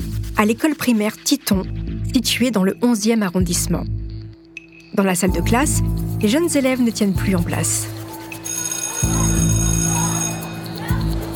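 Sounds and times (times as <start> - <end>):
speech: 0.4 - 4.0, 5.0 - 8.0
school bell ringing: 8.3 - 11.3
voices: 9.0 - 11.3.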